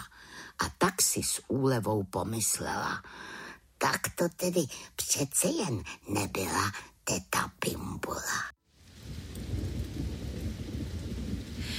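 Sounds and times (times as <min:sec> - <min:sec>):
speech: 0:00.6 - 0:08.6
steady rain pouring outside: 0:08.6 - 0:11.7
deep rolling low rumble: 0:08.9 - 0:11.7.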